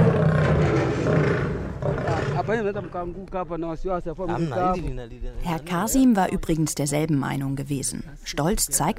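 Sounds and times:
lion roaring deeply: 0:00.0 - 0:02.9
speech: 0:02.5 - 0:08.9.

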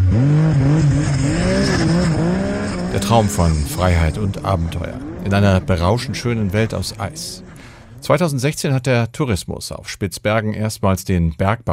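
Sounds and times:
vehicle engine revving on icy Svalbard: 0:00.0 - 0:08.3
speech: 0:03.1 - 0:11.7.

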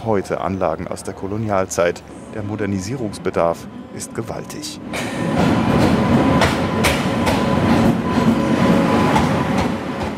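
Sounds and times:
speech: 0:00.0 - 0:05.6
dense low rumble of a passenger train: 0:00.0 - 0:10.1
passenger train wheels clacking on rails in India: 0:04.9 - 0:10.1.

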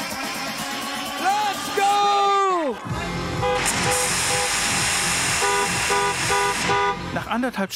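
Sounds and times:
crowd noise and shouting at a drive-in party: 0:00.1 - 0:02.9
many car horns honking at a drive-in party: 0:03.3 - 0:07.3
speech: 0:07.3 - 0:07.7.

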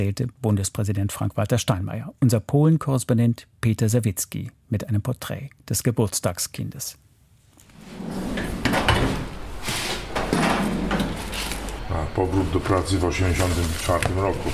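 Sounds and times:
speech: 0:00.0 - 0:07.1, 0:11.9 - 0:14.5
metal archive cabinet drawer overflowing with folders of slides sliding open: 0:07.7 - 0:11.8.

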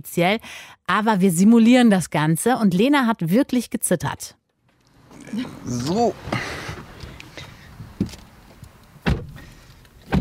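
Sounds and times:
speech: 0:00.0 - 0:04.4, 0:05.2 - 0:06.6
rustling and shifting of people getting into a car: 0:04.6 - 0:10.2
car door shutting with a solid thud: 0:05.4 - 0:10.2.

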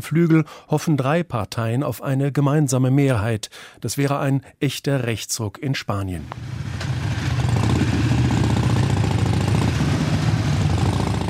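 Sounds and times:
speech: 0:00.0 - 0:06.9
group of motorcycles riding with low engine rumble: 0:06.2 - 0:11.2.

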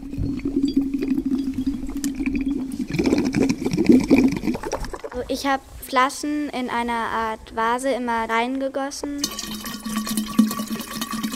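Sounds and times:
air blown through a straw into a glass of water: 0:00.0 - 0:05.4, 0:09.2 - 0:11.3
speech: 0:05.3 - 0:09.6.

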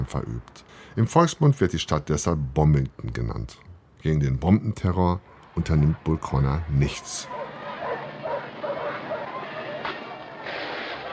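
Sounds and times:
speech: 0:00.0 - 0:07.4
steady wash of commotion: 0:04.4 - 0:11.1
dogs barking: 0:07.0 - 0:10.4.

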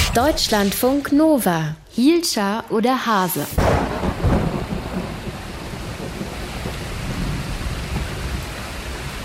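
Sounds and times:
speech: 0:00.1 - 0:03.9
low thunder rumble: 0:03.4 - 0:09.2
steady rain: 0:03.6 - 0:09.2.

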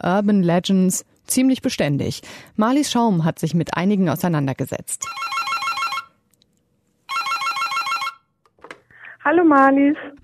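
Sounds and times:
speech: 0:00.0 - 0:05.4, 0:09.2 - 0:10.2
telephone ringing in an electronic trill: 0:05.0 - 0:06.2, 0:07.1 - 0:08.4.

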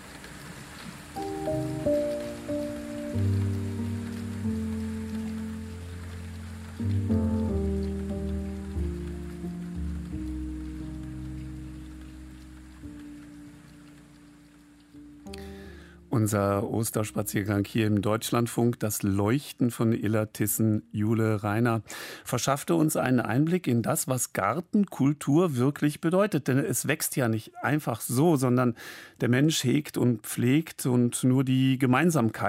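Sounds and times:
steady rain hissing: 0:00.0 - 0:19.4
slow sustained musical chords: 0:01.2 - 0:17.8
speech: 0:16.2 - 0:32.4.

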